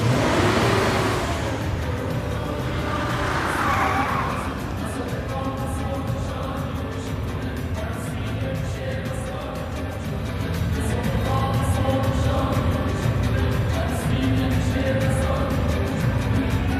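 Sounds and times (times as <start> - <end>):
pickup truck tires screeching: 0.0 - 6.3
Nissan pickup truck engine revving and driving off: 0.0 - 16.7.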